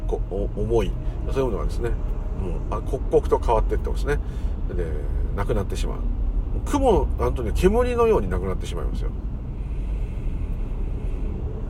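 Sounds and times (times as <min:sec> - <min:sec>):
idling and slowly moving cars in a heavy traffic jam: 0:00.0 - 0:11.6
speech: 0:00.1 - 0:09.3.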